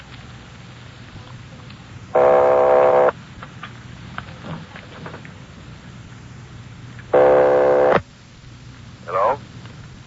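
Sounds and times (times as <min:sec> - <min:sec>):
hissy crackling telephone line noise: 0:00.0 - 0:10.0
faint voice fragment: 0:09.1 - 0:09.4.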